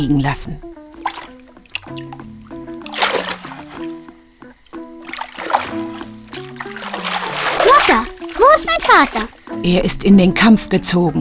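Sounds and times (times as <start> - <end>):
speech: 0.0 - 0.7, 1.8 - 2.2, 8.7 - 11.1
soft melodic music with sustained tones: 0.0 - 11.1
water splashing and sloshing: 0.9 - 9.6.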